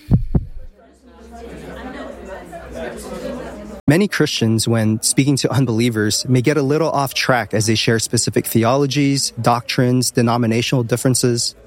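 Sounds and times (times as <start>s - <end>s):
deep heartbeat thumping: 0.0s - 0.7s
low murmur of indistinct voices and chatter: 0.6s - 11.6s
laughter: 1.1s - 3.8s
speech: 3.9s - 11.6s.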